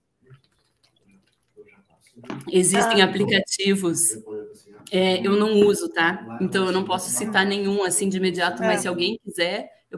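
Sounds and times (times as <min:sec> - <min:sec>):
person sipping and swallowing water: 0:00.2 - 0:02.2
speech: 0:01.6 - 0:09.9.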